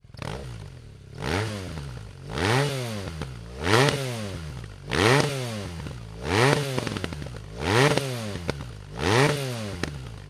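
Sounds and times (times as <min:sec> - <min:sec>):
motorcycle with hexagonal cone slip-on exhaust: 0:00.0 - 0:10.2.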